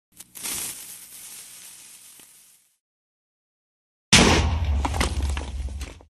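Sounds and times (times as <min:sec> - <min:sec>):
TNT explosion: 0:04.1 - 0:06.1.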